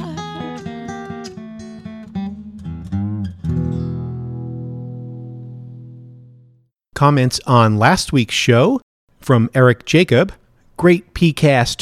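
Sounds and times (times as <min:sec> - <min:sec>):
electric guitar playing picked notes, bends and a chord: 0:00.0 - 0:06.6
speech: 0:07.0 - 0:11.7.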